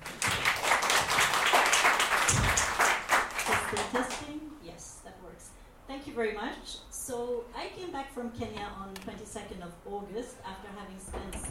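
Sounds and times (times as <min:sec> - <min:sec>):
audience applauding a group of speakers: 0:00.0 - 0:04.2
speech: 0:06.2 - 0:11.4.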